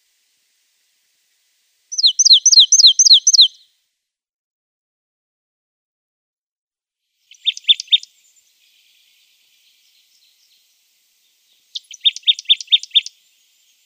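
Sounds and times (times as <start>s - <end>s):
marsh tit singing: 1.9s - 3.6s, 7.3s - 8.1s, 11.5s - 13.8s.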